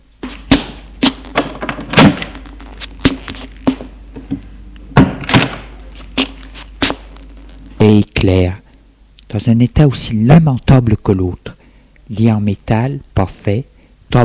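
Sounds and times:
faint low hum: 0.0 - 14.2
wooden thunks and clacks of a door being opened: 0.6 - 2.4, 5.0 - 5.7
speech: 7.8 - 8.6, 9.3 - 14.2.

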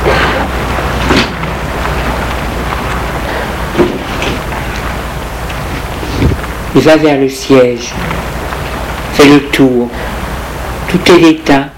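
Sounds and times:
hiss: 0.0 - 11.7
speech: 6.8 - 8.3, 9.2 - 10.2, 10.9 - 11.7.

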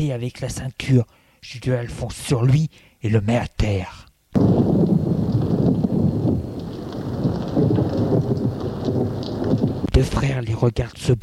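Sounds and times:
speech: 0.0 - 4.7, 10.0 - 11.2
continuous low thunder rumble: 4.4 - 10.4
heavy rain during a thunderstorm: 4.4 - 11.2.

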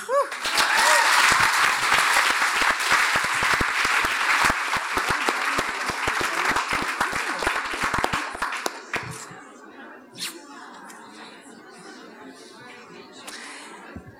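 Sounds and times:
loud sustained applause from a large audience for a prize winner: 0.2 - 9.3
audience cheers: 0.3 - 2.1.

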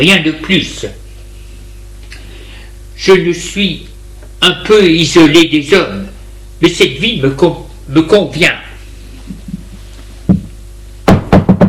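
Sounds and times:
speech: 0.0 - 1.0, 3.0 - 6.0, 6.6 - 8.6
knocking on a door: 10.3 - 10.5, 11.1 - 11.6.

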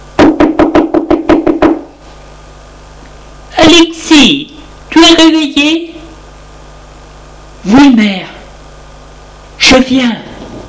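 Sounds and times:
loud hollow knocking on a door: 0.2 - 1.9
speech: 3.6 - 5.9, 7.6 - 8.3, 9.7 - 10.3.

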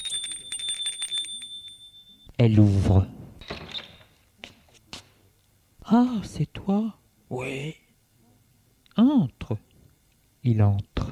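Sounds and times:
doorbell ringing in a steady bright electric tone: 0.0 - 2.3
speech: 2.4 - 3.2, 5.9 - 7.8, 9.0 - 9.7, 10.4 - 11.1.

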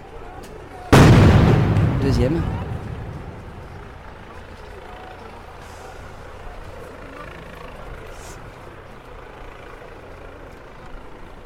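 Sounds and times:
GM2L grenade explosion thrown by riot police at a street protest: 0.9 - 4.4
speech: 2.1 - 2.6.

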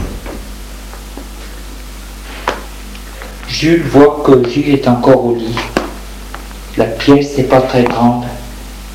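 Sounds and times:
door shut by a father walking out: 0.0 - 0.5
steady low hiss and hum: 0.0 - 8.9
speech: 3.6 - 5.8, 6.8 - 8.4.

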